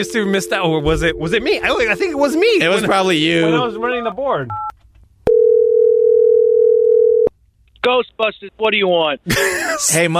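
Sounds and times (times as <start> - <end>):
speech: 0.0 - 4.7, 7.8 - 10.1
telephone dial tone after dialing: 5.3 - 7.3.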